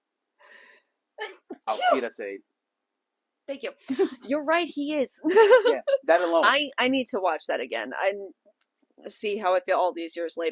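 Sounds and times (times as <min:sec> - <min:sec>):
person sneezing: 0:01.3 - 0:02.2, 0:06.1 - 0:06.4
speech: 0:01.7 - 0:02.5, 0:03.5 - 0:08.4, 0:09.0 - 0:10.4
laughter: 0:05.2 - 0:06.6.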